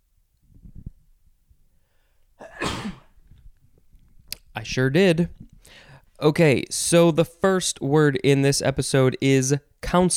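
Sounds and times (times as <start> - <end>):
soft breathing: 1.6 - 2.4, 5.4 - 6.2
person sneezing: 2.4 - 3.2
speech: 4.6 - 10.1.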